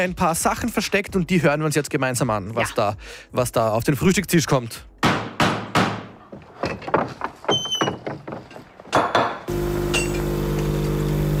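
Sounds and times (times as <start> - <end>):
speech: 0.0 - 4.9
sharp irregular knocks and clattering taps: 5.0 - 9.5
coffee machine at a breakfast table starting up with electric hum and whir: 9.5 - 11.3.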